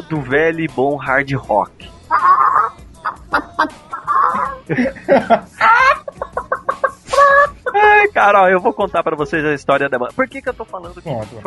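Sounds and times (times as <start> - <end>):
speech: 0.1 - 2.0, 4.7 - 5.5, 8.2 - 11.4
chicken clucking: 2.1 - 4.7, 5.6 - 7.9
laughter: 3.1 - 9.1.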